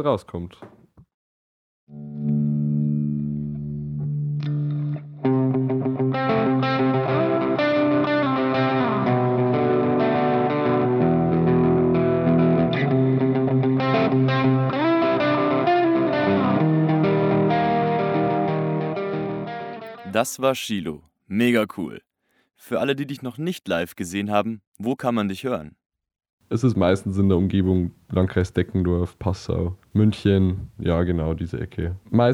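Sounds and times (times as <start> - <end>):
speech: 0.0 - 0.7, 20.2 - 25.8, 26.5 - 32.3
electric guitar played through distortion and chorus effects in a recording studio: 1.9 - 20.1.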